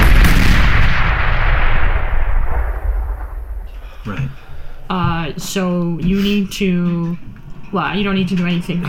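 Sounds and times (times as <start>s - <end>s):
grenades exploding in a hand: 0.0s - 4.9s
speech: 4.9s - 8.8s.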